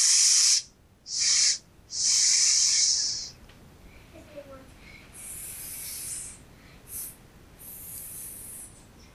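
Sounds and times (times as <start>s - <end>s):
person hissing like a snake: 0.0s - 3.4s, 5.2s - 8.8s.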